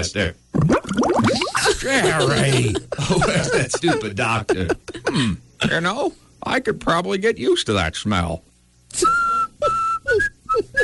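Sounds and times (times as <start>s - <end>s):
speech: 0.0s - 0.4s, 1.2s - 10.8s
laughter: 1.4s - 5.4s
person whistling a short tune: 9.0s - 10.8s.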